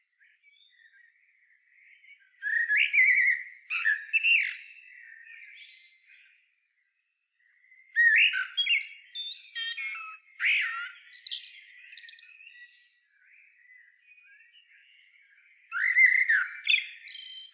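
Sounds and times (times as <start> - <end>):
common blackbird Turdus merula fluting song with twittering notes: 2.1 - 6.3, 7.8 - 17.5.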